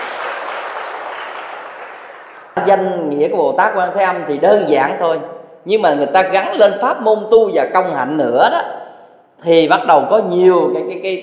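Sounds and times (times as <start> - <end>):
audience applause at a Buddhist talk: 0.0 - 2.6
speech: 2.6 - 8.8, 9.4 - 11.2.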